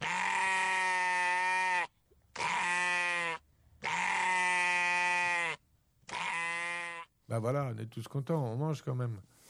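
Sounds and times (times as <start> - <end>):
sheep bleating: 0.0 - 7.1
speech: 7.3 - 9.4.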